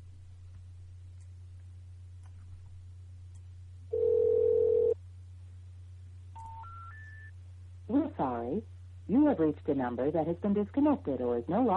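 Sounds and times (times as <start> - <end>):
low hum: 0.0 - 11.7
telephone dial tone while dialing in to a broadcast line: 3.9 - 5.0
speech: 8.2 - 11.7.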